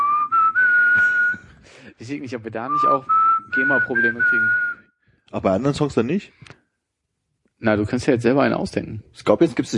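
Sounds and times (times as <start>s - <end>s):
person whistling a short song melody: 0.0s - 1.6s, 2.6s - 4.9s
speech: 2.0s - 4.7s, 5.3s - 6.6s, 7.6s - 9.7s.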